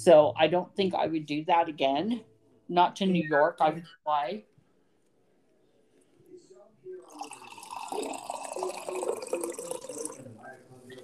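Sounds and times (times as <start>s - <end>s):
speech: 0.0s - 4.5s
steady stream of liquid pouring: 7.0s - 11.0s.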